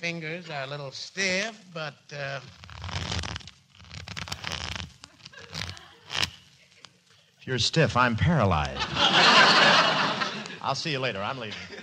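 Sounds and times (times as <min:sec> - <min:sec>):
speech: 0:00.0 - 0:03.0, 0:07.4 - 0:09.8, 0:10.6 - 0:11.8
deck of playing cards being shuffled: 0:01.6 - 0:07.2
laughter: 0:05.1 - 0:07.4, 0:08.6 - 0:11.8.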